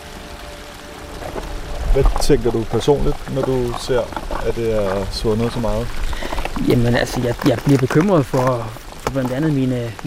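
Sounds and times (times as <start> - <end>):
meltwater trickling and gurgling in small streams on a glacier: 0.0 - 10.0
speech: 2.0 - 10.0.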